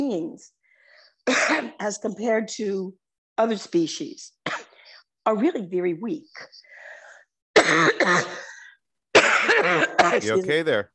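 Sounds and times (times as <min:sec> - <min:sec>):
speech: 0:00.0 - 0:00.6, 0:01.2 - 0:04.6, 0:05.2 - 0:06.8, 0:07.6 - 0:08.5, 0:09.6 - 0:10.9
person with a seasonal cough coughing: 0:01.3 - 0:01.8, 0:07.6 - 0:08.6, 0:09.2 - 0:10.4.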